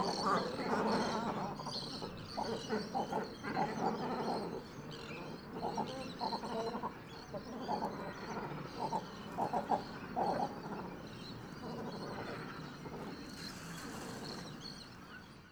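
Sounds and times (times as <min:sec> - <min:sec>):
great cormorants croaking and grunting arriving at a roost: 0:00.0 - 0:15.2.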